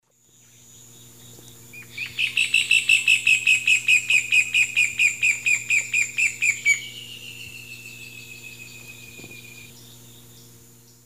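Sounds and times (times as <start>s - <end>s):
Furnarius leucopus duet in South American eastern lowlands: 0.2s - 11.0s.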